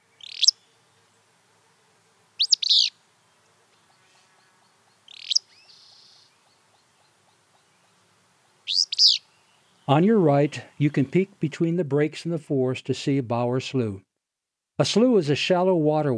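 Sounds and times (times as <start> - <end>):
willow flycatcher sneezy fitz-bew call: 0.0 - 12.7
faint insect hum: 0.0 - 13.4
speech: 9.9 - 14.1, 14.8 - 16.1.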